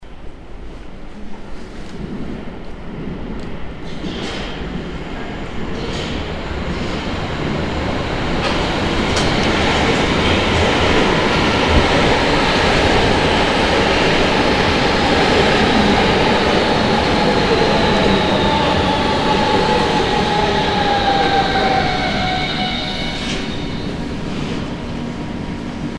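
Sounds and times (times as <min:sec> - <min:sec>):
two subway trains arriving: 0:00.0 - 0:25.9.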